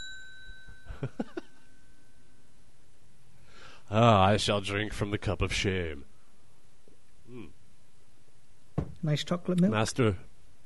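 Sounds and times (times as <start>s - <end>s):
small bell ringing with a bright metallic tone: 0.0s - 2.4s
speech: 1.0s - 1.3s, 3.9s - 6.1s, 9.0s - 10.3s.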